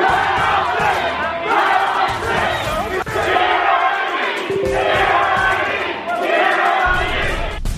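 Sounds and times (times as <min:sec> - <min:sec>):
large crowd of protesters shouting and roaring: 0:00.0 - 0:07.6.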